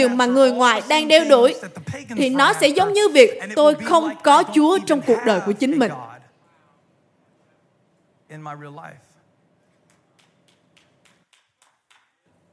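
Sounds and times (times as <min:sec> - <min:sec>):
speech: 0:00.0 - 0:06.1, 0:08.3 - 0:09.1
sharp separate claps: 0:09.7 - 0:12.4.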